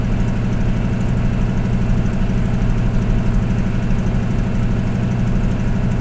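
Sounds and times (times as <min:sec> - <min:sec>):
aircraft engines heard in a Hellcat cockpit: 0:00.0 - 0:05.9.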